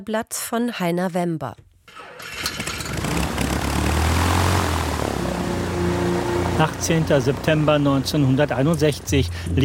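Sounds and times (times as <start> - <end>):
speech: 0.0 - 2.3, 6.6 - 9.6
propeller airliner engines rumbling and droning: 2.8 - 9.6.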